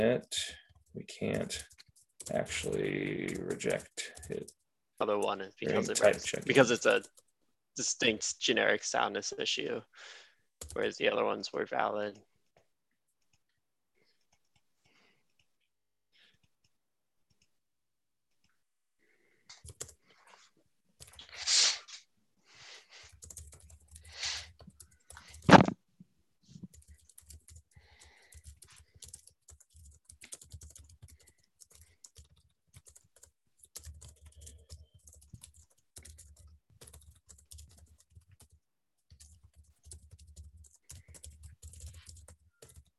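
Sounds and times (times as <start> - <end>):
speech: 0.0 - 7.2, 7.8 - 12.3
computer keyboard typing: 0.7 - 4.6, 5.7 - 7.3, 10.6 - 10.9, 19.5 - 20.0, 23.1 - 25.7, 26.7 - 42.9.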